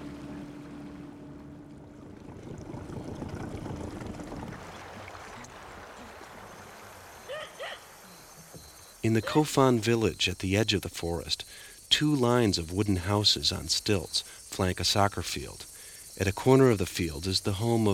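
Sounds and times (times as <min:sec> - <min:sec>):
low droning hum: 0:00.0 - 0:04.6
water rushing and slapping against a long wooden dugout boat hull on a river: 0:00.0 - 0:07.1
person calling: 0:07.3 - 0:10.5
speech: 0:09.0 - 0:17.9.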